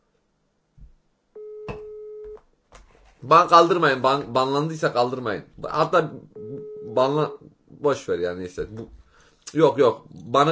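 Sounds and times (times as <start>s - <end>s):
telephone ringing tone while placing a call: 1.4s - 2.4s
speech: 3.2s - 10.5s.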